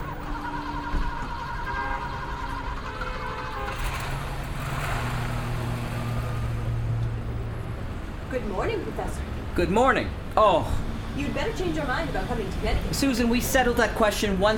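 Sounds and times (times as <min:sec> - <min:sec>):
car engine pulling away and driving off: 0:00.0 - 0:08.2
speech: 0:08.4 - 0:14.5.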